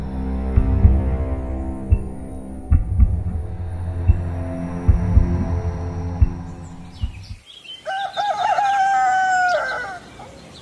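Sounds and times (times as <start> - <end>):
low rumbling noise: 0.0 - 7.4
rooster crowing on a cool countryside morning: 7.8 - 10.2.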